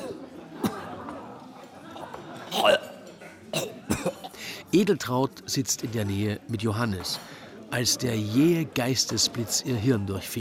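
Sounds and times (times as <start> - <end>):
man waking, spitting and coughing: 0.0 - 1.0, 2.5 - 4.4
faint chatter and voices: 0.0 - 10.4
speech: 2.6 - 2.9, 4.7 - 10.4.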